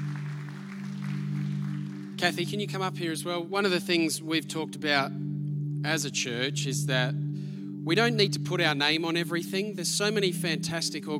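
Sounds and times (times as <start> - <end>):
audience in a church clapping: 0.0 - 2.6
speech: 2.2 - 11.1.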